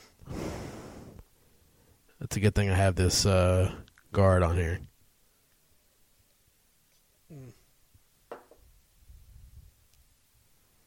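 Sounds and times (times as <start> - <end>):
breath blowing into microphone: 0.0 - 1.2
speech: 2.2 - 4.9.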